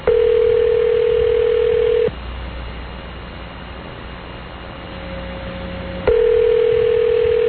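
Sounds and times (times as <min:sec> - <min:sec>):
ringback tone on an outgoing phone call: 0:00.0 - 0:02.1, 0:06.1 - 0:07.4.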